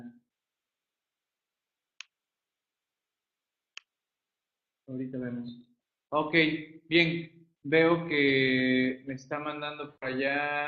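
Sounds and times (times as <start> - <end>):
mouse clicks: 2.0 - 2.2
speech: 4.9 - 10.6.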